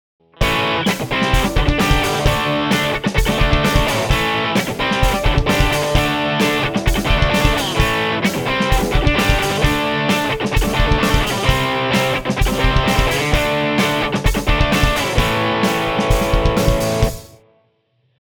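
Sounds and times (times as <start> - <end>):
guitar through an overdrive pedal: 0.2 - 17.5.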